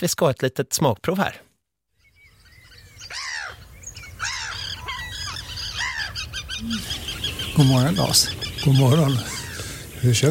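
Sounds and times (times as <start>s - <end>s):
speech: 0.0s - 1.5s, 6.6s - 6.9s, 7.6s - 9.4s, 10.0s - 10.2s
birds with arching honking cries: 2.0s - 10.2s.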